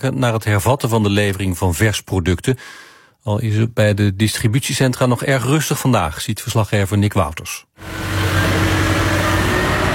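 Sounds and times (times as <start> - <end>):
speech: 0.0 - 8.7
truck engine drone on its way to restock a supermarket in the Netherlands or Belgium: 7.8 - 9.9.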